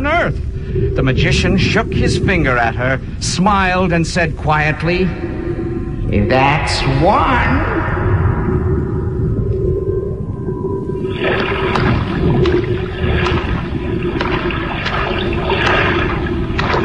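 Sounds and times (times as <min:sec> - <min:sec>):
deep low rumble: 0:00.0 - 0:16.8
speech: 0:00.2 - 0:05.3, 0:06.1 - 0:07.7
floodwater sloshing and splashing: 0:11.0 - 0:16.8
wading splashes of someone in hip boots over rugs and floors: 0:11.0 - 0:16.8.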